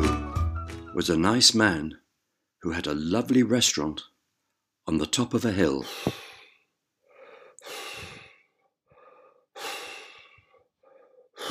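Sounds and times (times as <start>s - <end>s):
speech: 1.0s - 2.0s, 2.6s - 4.1s, 4.8s - 6.2s
man panting heavily while walking up a hill: 5.8s - 11.5s.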